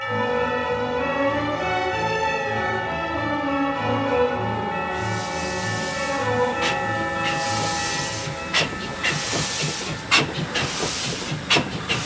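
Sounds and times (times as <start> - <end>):
train rumbling through a snowy region: 0.1 - 12.0
steam hissing in sharp bursts: 4.6 - 12.0
rhythmic clatter of train wheels: 5.3 - 12.0.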